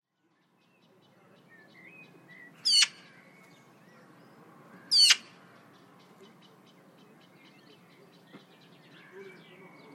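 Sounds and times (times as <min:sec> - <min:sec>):
bird giving loud sharp sweeping calls: 0:01.6 - 0:04.1, 0:04.8 - 0:09.9.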